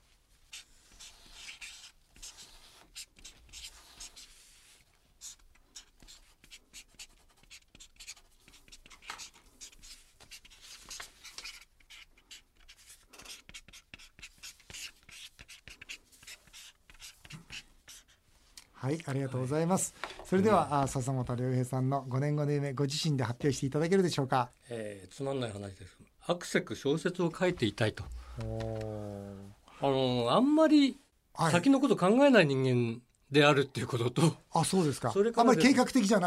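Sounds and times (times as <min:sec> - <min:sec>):
pen scratching and squeaking on a stiff shikishi card: 0:00.4 - 0:18.2
speech: 0:18.8 - 0:29.1, 0:29.8 - 0:36.2.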